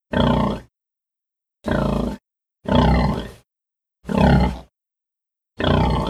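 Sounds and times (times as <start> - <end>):
pig grunting: 0.1 - 0.7, 1.6 - 3.4, 4.1 - 4.7, 5.6 - 6.0.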